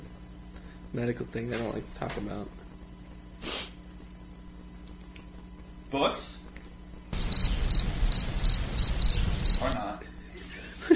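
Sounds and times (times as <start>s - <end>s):
speech: 0.9s - 2.6s, 5.9s - 6.4s
crickets chirping: 7.1s - 9.8s
low rumble: 7.1s - 9.8s.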